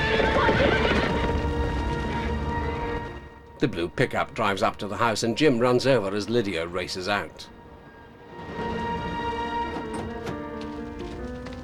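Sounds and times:
horses neighing and whinnying as they are released: 0.0s - 3.2s
clattering horse hooves: 0.0s - 3.6s, 8.4s - 11.6s
speech: 3.6s - 7.6s.

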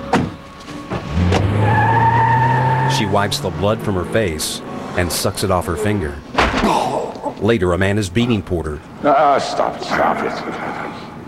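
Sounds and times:
car driving away: 0.6s - 7.1s
speech: 3.0s - 6.8s, 7.4s - 10.8s.

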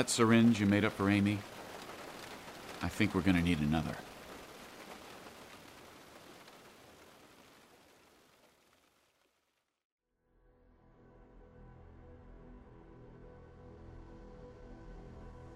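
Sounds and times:
speech: 0.0s - 1.6s, 2.8s - 4.1s
heavy rain pouring: 0.0s - 9.6s.

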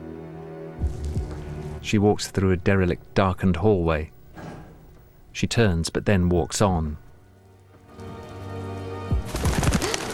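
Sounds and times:
low steady hum: 0.8s - 8.4s
speech: 1.8s - 4.2s, 5.4s - 7.0s
pigeons fluttering in a derelict darkened hallway: 9.2s - 10.1s.

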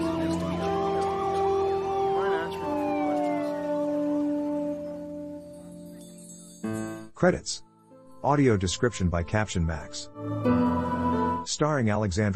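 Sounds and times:
ambulance siren wailing as emergency vehicles drive down the street: 0.0s - 6.1s, 10.1s - 11.5s
speech: 7.2s - 10.7s, 11.4s - 12.3s.

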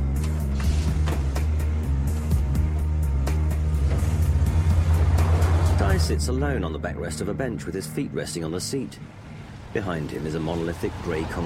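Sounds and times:
brown coupe car engine driving off: 0.2s - 6.7s, 8.9s - 11.4s
speech: 6.0s - 11.4s.

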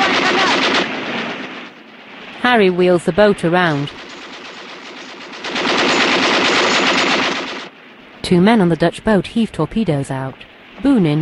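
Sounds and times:
machine-gun fire from a ship's gun tower aimed at a boat: 0.0s - 1.6s, 4.0s - 7.7s
speech: 2.4s - 4.0s, 8.3s - 11.2s.

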